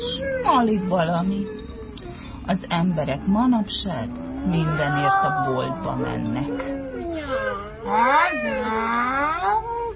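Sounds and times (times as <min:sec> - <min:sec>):
speech: 0:00.5 - 0:01.6, 0:02.4 - 0:06.8, 0:07.8 - 0:09.7
cat meowing: 0:04.3 - 0:09.8.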